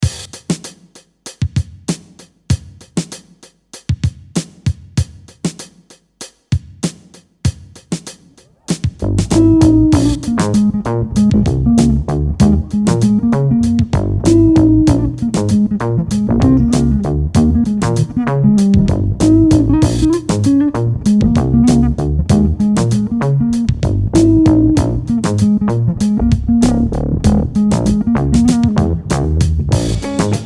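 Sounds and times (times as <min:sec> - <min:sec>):
rhythm: 0:00.0 - 0:30.4
bass through audio pedals: 0:09.0 - 0:30.4.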